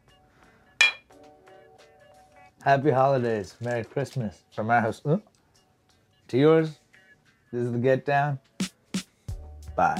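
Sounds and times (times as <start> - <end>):
glasses of rum and eggnog clinking in a holiday toast: 0.8 - 1.1
speech: 2.6 - 5.3, 6.3 - 6.8, 7.5 - 8.5, 9.8 - 9.9.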